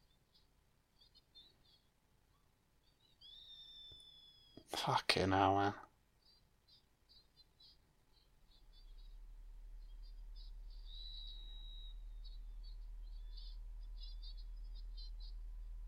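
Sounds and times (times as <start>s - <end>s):
owl hooting in the jungle at night: 0.0s - 4.7s, 5.5s - 15.8s
high chirping trills among jungle night sounds: 0.0s - 15.8s
speech: 4.7s - 5.8s
steady low hum: 7.5s - 15.8s
sustained whistling note: 9.8s - 15.8s.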